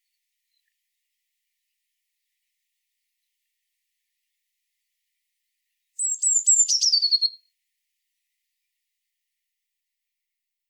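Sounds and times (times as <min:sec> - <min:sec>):
Eurasian blue tit calling: 0:06.0 - 0:07.4.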